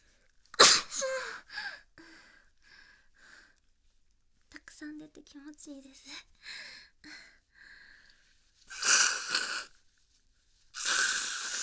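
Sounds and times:
loud wet spraying sneeze: 0.6 - 1.0, 8.7 - 9.7, 10.8 - 11.6
speech: 4.8 - 7.2.

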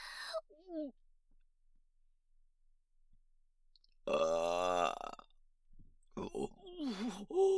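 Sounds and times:
loud drawn-out burp: 4.1 - 5.2
soft breathy vocal noises: 6.2 - 7.5.

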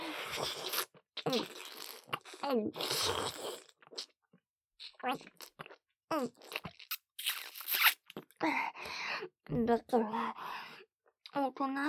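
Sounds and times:
wet slurping and sucking mouth noises: 0.2 - 4.1, 6.3 - 8.2
speech: 1.2 - 1.6, 2.5 - 3.5, 5.0 - 5.5, 6.1 - 6.6, 9.5 - 10.4, 11.3 - 11.8.

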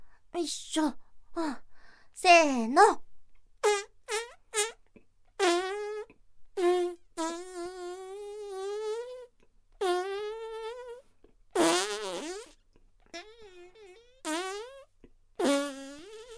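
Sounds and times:
speech: 0.4 - 3.0, 3.6 - 4.3
deliberate farts pushed out by straining while bent forward: 3.6 - 4.8, 5.4 - 11.0, 11.6 - 16.3.

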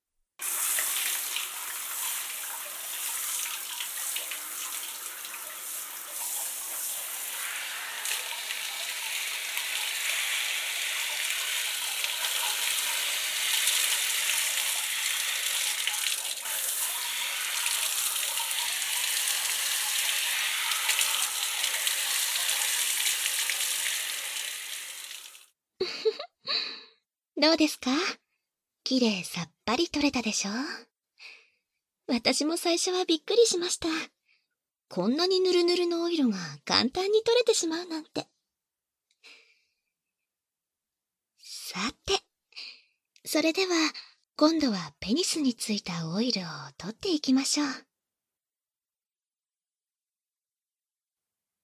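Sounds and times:
shower water spraying, rinsing off oil: 0.4 - 25.5
speech: 27.4 - 28.2, 28.9 - 30.9, 32.1 - 34.2, 34.9 - 38.3, 41.7 - 42.2, 43.3 - 47.9.

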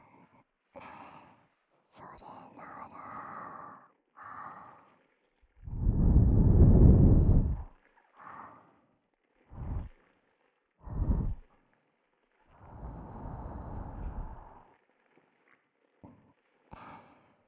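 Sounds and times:
soft breaths blown into the ear: 5.6 - 8.5, 9.5 - 10.0, 10.8 - 11.5, 12.6 - 14.6.

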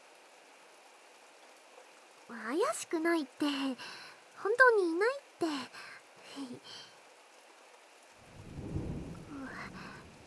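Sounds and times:
steady rain: 0.0 - 10.2
speech: 2.3 - 6.9
faint vocal sounds: 3.3 - 7.0, 9.2 - 10.2
deep rolling thunder rumble: 8.2 - 10.2.

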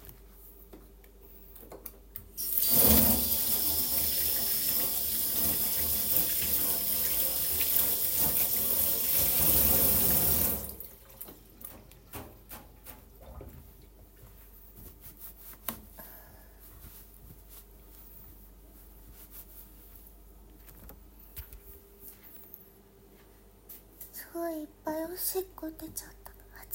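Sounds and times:
water running from a tap as hands are washed: 2.4 - 11.4
speech: 24.3 - 26.2.

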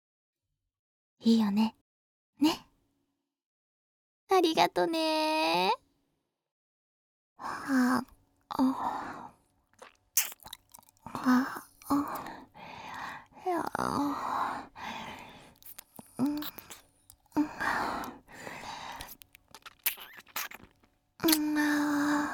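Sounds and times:
speech: 1.2 - 1.8, 2.4 - 2.6, 4.3 - 5.8, 7.4 - 9.2, 11.1 - 12.4, 13.5 - 15.0, 21.2 - 22.3
breathy sighs: 7.4 - 9.4, 11.0 - 16.4, 17.3 - 19.1, 21.4 - 22.3
crunchy chewing of hot hard food: 9.6 - 13.0, 15.0 - 21.5
soft vocal sounds: 10.7 - 22.3.

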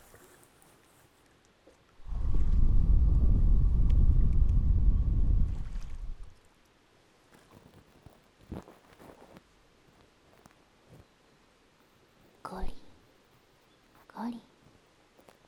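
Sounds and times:
deep churning rumble of a boat being rowed on water: 2.0 - 6.4
faint splashes from rowing a boat: 5.2 - 6.6.

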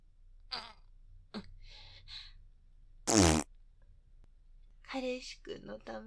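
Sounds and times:
short sputtering and buzzing fart noises: 3.1 - 3.5
speech: 5.2 - 6.0.

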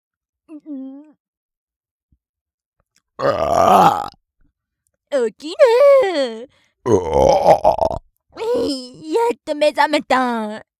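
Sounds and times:
speech: 0.6 - 1.2, 3.2 - 4.2, 5.1 - 10.7
long loud rumbling burp: 3.2 - 4.2, 6.9 - 8.0.

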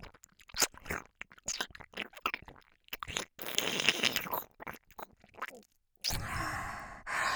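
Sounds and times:
crunchy chewing and biting: 0.5 - 5.6
soft breaths between bites: 6.1 - 7.3.

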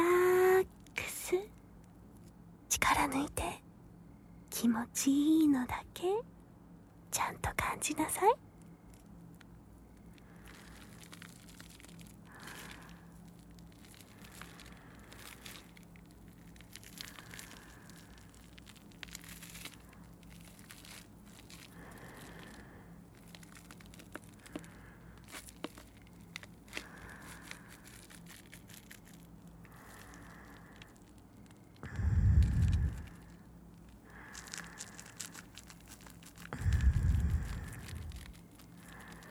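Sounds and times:
speech: 3.0 - 3.5, 4.6 - 6.3, 7.2 - 8.5
foam bubbles crackling, fizzing and popping: 31.8 - 33.5, 34.1 - 39.3
low rumbling swells: 31.8 - 33.5, 36.5 - 39.2.

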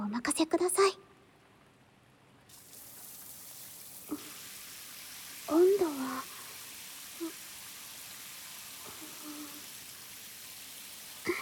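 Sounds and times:
speech: 0.2 - 1.0
shower water spraying: 2.5 - 11.4.

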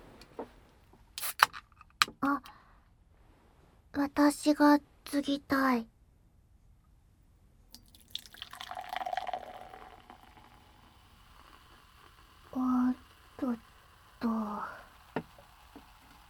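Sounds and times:
speech: 4.1 - 5.9
fizzy drink poured into a glass: 7.8 - 16.2.

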